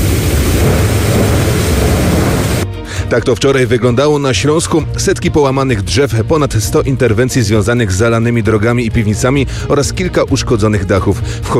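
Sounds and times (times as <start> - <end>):
heavy rain in a nighttime thunderstorm in Silesia Poland: 0.0 - 2.7
strong wind in a nighttime thunderstorm in Silesia Poland: 0.0 - 2.7
deep rumbling low end of a thunderstorm: 0.0 - 3.0
speech: 3.1 - 11.5.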